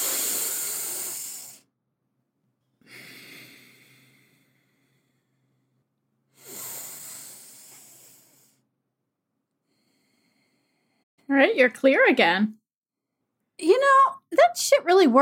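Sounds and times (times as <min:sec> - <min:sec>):
deep slow breaths taken to calm down: 0:00.0 - 0:01.7, 0:02.8 - 0:08.7, 0:09.5 - 0:11.1
speech: 0:11.3 - 0:12.6, 0:13.6 - 0:15.1.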